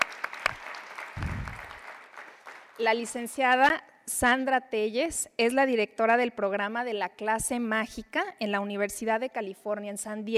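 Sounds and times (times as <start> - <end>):
audience applause for a doctor being introduced: 0.0 - 2.8
speech: 2.8 - 10.3.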